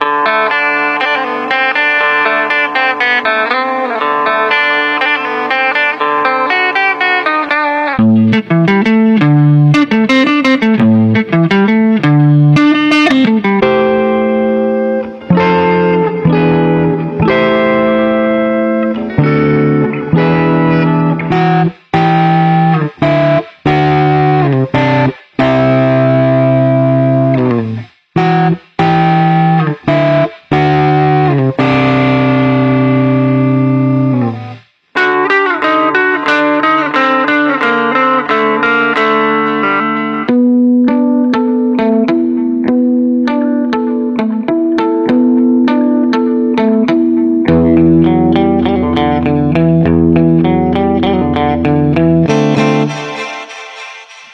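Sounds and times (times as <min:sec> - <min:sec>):
vintage guitar: 0:00.0 - 0:54.3.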